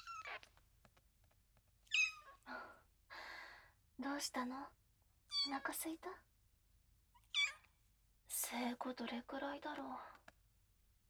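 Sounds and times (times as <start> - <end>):
kitten meowing: 1.9 - 2.3, 7.3 - 7.6
speech: 4.0 - 4.8, 5.4 - 6.3, 8.5 - 10.2.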